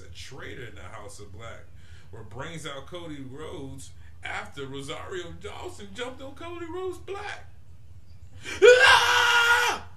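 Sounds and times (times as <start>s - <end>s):
speech: 0.2s - 7.5s, 8.4s - 9.3s
high-pitched scream in a wrestling entrance theme: 8.5s - 9.9s.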